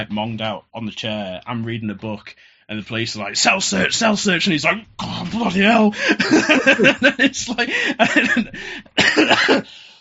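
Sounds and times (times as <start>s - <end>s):
speech: 0.0s - 9.8s
laughter: 5.9s - 8.7s
person getting over a cough coughing: 7.6s - 9.8s.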